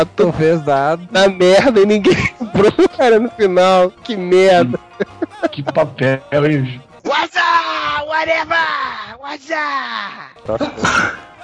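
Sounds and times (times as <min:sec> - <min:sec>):
speech: 0:00.0 - 0:11.3
laughter: 0:01.5 - 0:03.4, 0:04.4 - 0:06.2
sharp sneeze: 0:10.7 - 0:11.3.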